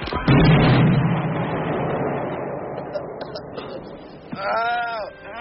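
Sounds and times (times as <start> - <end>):
thrown hand grenade exploding with a long rumble: 0.2 - 5.2.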